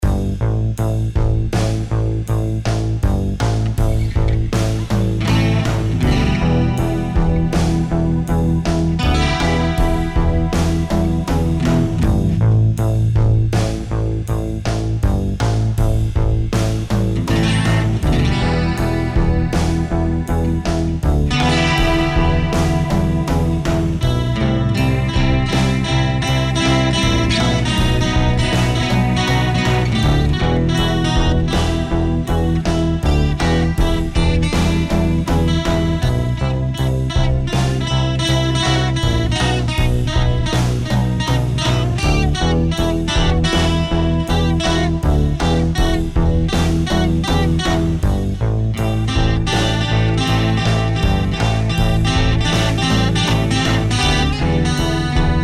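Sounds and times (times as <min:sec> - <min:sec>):
guitar: 0:00.0 - 0:55.4.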